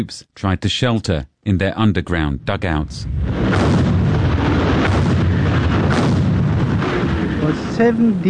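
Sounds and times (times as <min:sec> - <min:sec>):
speech: 0:00.0 - 0:04.0, 0:07.5 - 0:08.2
massive British and French artillery bombardment of German frontline defences: 0:03.1 - 0:07.9.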